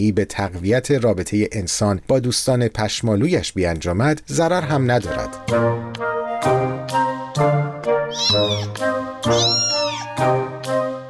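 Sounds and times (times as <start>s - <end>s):
speech: 0.0s - 10.5s
cat meowing with drawn-out loud calls: 8.1s - 10.2s.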